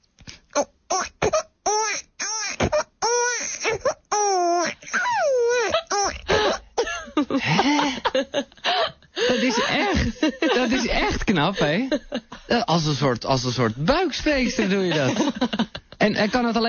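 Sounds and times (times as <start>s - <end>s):
person imitating a baby crying: 0.6s - 6.7s
laughter: 6.8s - 12.8s, 14.3s - 16.6s
speech: 7.3s - 8.5s, 9.4s - 16.6s.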